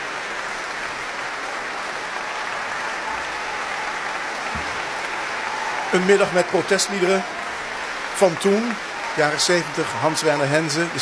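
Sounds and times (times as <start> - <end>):
large concert audience applauding after a performance: 0.0 - 10.9
speech: 5.9 - 7.4, 8.2 - 10.9.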